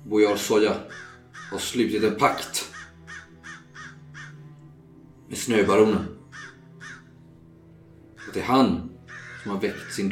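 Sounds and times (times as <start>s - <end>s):
speech: 0.1s - 2.7s, 5.3s - 6.2s, 8.4s - 10.0s
crows cawing in harsh calls: 0.7s - 1.8s, 2.4s - 4.7s, 6.2s - 7.3s, 8.0s - 10.0s.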